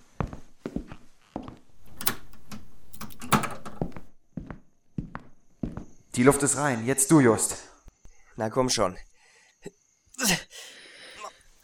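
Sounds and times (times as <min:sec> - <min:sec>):
door being shut and locked: 0:01.7 - 0:04.1
speech: 0:06.2 - 0:07.7, 0:08.4 - 0:10.4.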